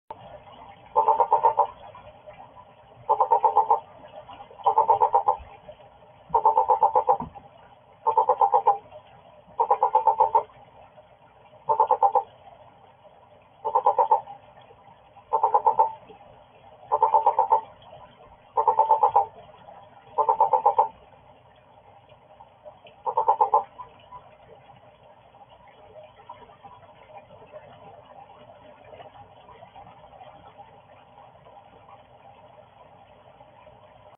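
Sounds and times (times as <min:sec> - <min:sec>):
tomato frogs calling: 0:00.9 - 0:01.8, 0:03.1 - 0:03.9, 0:04.6 - 0:05.5, 0:06.3 - 0:07.3, 0:08.0 - 0:08.8, 0:09.6 - 0:10.5, 0:11.7 - 0:12.3, 0:13.6 - 0:14.4, 0:15.3 - 0:16.1, 0:16.9 - 0:17.8, 0:18.5 - 0:19.4, 0:20.2 - 0:21.0, 0:23.0 - 0:24.0.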